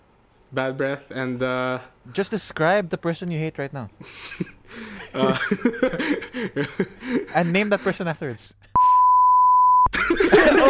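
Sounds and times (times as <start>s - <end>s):
speech: 0.5s - 8.7s
laughter: 4.0s - 8.0s, 9.9s - 10.6s
censor bleep over a spoken name: 8.8s - 9.9s.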